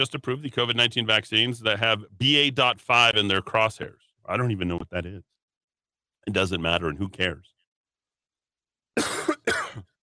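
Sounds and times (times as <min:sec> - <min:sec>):
speech: 0:00.0 - 0:05.3, 0:06.2 - 0:07.5, 0:09.0 - 0:09.9
forceful harsh coughs: 0:09.0 - 0:10.0.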